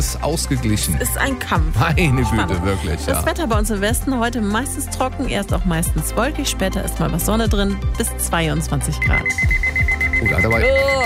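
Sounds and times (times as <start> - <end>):
speech: 0.0 - 11.0
alarm clock beeping: 8.8 - 11.0.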